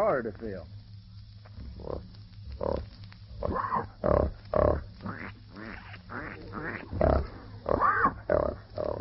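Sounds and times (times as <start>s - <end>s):
speech: 0.2s - 0.8s, 1.8s - 4.8s
pigs oinking and grunting with short squeals: 2.6s - 8.9s.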